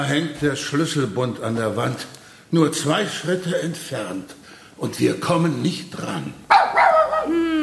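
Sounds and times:
speech: 0.0s - 7.4s
dog whining yelp: 6.5s - 7.5s.

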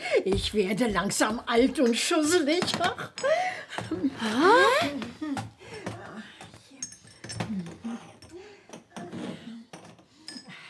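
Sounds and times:
speech: 0.2s - 5.4s
glass jars clinking as they are handled: 6.8s - 8.8s, 9.7s - 10.6s.

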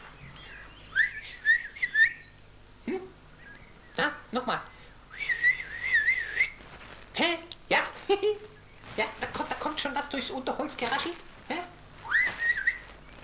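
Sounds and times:
person whistling softly: 0.9s - 2.3s, 5.1s - 6.6s, 12.0s - 12.9s
person speaking: 7.1s - 12.0s.

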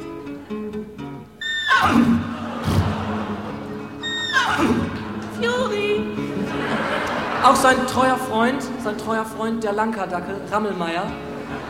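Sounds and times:
horse whinnying: 1.4s - 3.1s, 4.0s - 5.0s
horse snorting: 1.7s - 3.2s
laughter: 1.7s - 5.4s, 6.2s - 9.0s, 11.3s - 11.6s
speech: 7.4s - 11.3s.

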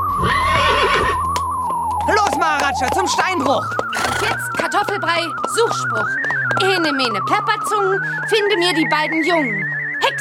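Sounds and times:
horse neighing: 0.1s - 1.2s, 3.9s - 4.7s
speech: 2.1s - 10.1s.

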